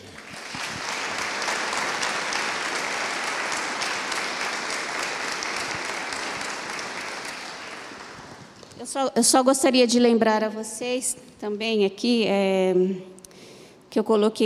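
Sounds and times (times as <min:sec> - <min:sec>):
crowd applauding: 0:00.0 - 0:08.8
speech: 0:08.8 - 0:13.1, 0:14.0 - 0:14.4.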